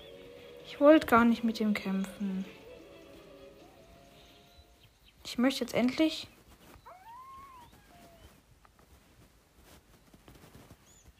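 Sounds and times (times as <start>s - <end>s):
speech: 0.7s - 2.6s, 5.3s - 6.4s
fox howling in a video game: 6.8s - 8.4s.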